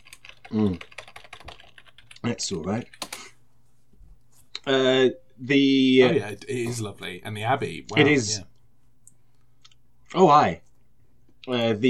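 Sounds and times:
typing on a computer keyboard: 0:00.0 - 0:03.3
speech: 0:00.5 - 0:00.9, 0:02.2 - 0:03.0, 0:04.7 - 0:08.5, 0:10.1 - 0:10.6, 0:11.4 - 0:11.8.

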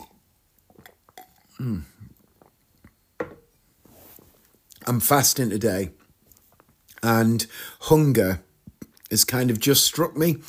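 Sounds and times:
person slurping and gulping a drink: 0:00.0 - 0:03.0
speech: 0:01.6 - 0:02.0, 0:04.9 - 0:06.0, 0:07.0 - 0:08.5, 0:09.1 - 0:10.4
cup clicking: 0:03.2 - 0:03.5
faint rustles: 0:03.8 - 0:04.6.

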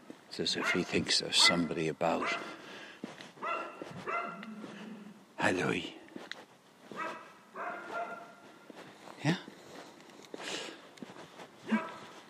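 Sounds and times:
speech: 0:00.4 - 0:02.6, 0:05.4 - 0:06.0
dog barking outdoors: 0:00.5 - 0:02.6, 0:03.4 - 0:04.8, 0:06.9 - 0:08.5, 0:11.6 - 0:12.2
rustling ambience: 0:03.0 - 0:05.2, 0:06.1 - 0:12.2.

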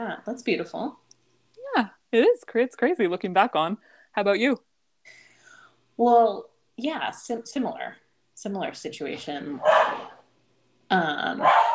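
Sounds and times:
speech: 0:00.0 - 0:01.1, 0:01.8 - 0:05.2, 0:06.0 - 0:10.1, 0:10.9 - 0:11.7
dog barking loudly: 0:09.6 - 0:10.2, 0:11.4 - 0:11.7.

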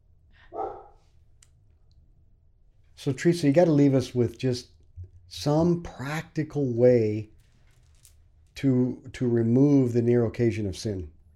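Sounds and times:
low hum: 0:00.0 - 0:11.3
dog barking downstairs: 0:00.5 - 0:01.0
speech: 0:03.0 - 0:07.3, 0:08.6 - 0:11.2.

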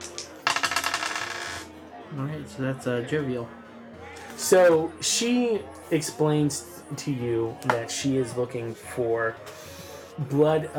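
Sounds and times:
dice being passed and clattering across a surface: 0:00.0 - 0:01.7
speech: 0:02.1 - 0:03.6, 0:04.4 - 0:09.6, 0:10.2 - 0:10.7.

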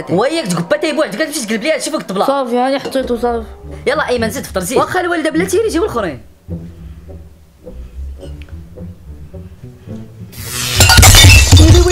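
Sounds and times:
speech: 0:00.0 - 0:06.7, 0:11.7 - 0:11.9
object falling and shattering: 0:10.4 - 0:11.9.

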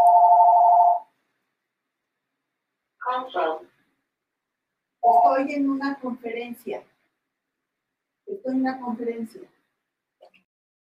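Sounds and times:
phone ringing with a steady electronic tone: 0:00.0 - 0:01.1, 0:05.0 - 0:05.4
speech: 0:05.4 - 0:06.9, 0:08.3 - 0:09.6.

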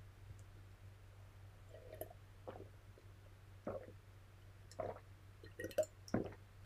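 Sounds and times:
person sipping and swallowing water: 0:03.6 - 0:04.0, 0:04.7 - 0:06.4.

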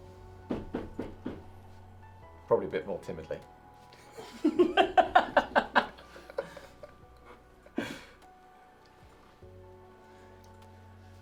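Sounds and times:
knocking on a flat's door: 0:00.5 - 0:01.6
speech: 0:02.5 - 0:03.6
laughter: 0:04.2 - 0:07.0.

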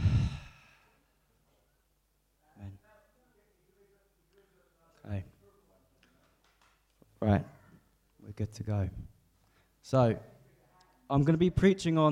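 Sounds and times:
people breathing deeply in a group breathing exercise: 0:00.0 - 0:01.0
speech: 0:07.2 - 0:07.6, 0:08.3 - 0:09.1, 0:09.8 - 0:10.3, 0:11.1 - 0:12.1.

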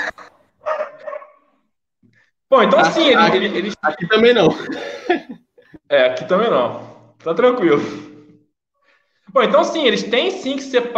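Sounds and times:
laughter: 0:00.0 - 0:00.4, 0:02.6 - 0:05.5
dog barking: 0:00.6 - 0:01.5
speech: 0:02.5 - 0:08.1, 0:09.3 - 0:10.9.

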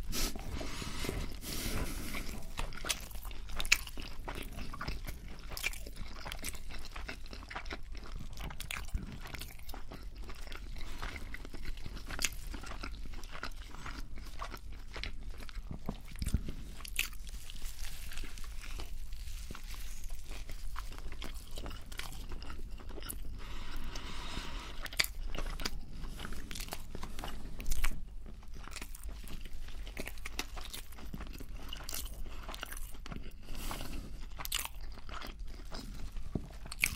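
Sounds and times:
biting and chewing a Burger King meal: 0:00.0 - 0:36.9.

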